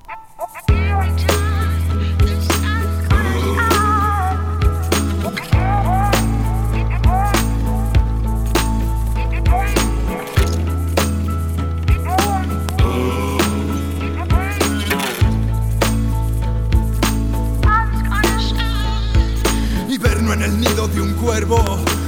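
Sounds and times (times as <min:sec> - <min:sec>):
voice rapping in Spanish with protest lyrics: 0:00.4 - 0:08.4, 0:09.3 - 0:10.4, 0:11.9 - 0:15.2, 0:17.7 - 0:22.0
heavy bass notes: 0:00.7 - 0:22.0
crisp clicking percussion: 0:09.6 - 0:16.0.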